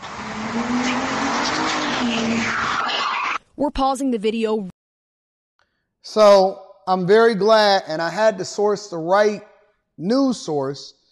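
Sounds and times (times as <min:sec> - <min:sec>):
steady car engine drone: 0:00.0 - 0:03.4
speeding car tires screeching: 0:00.0 - 0:03.5
speech: 0:03.6 - 0:04.7, 0:06.0 - 0:11.0.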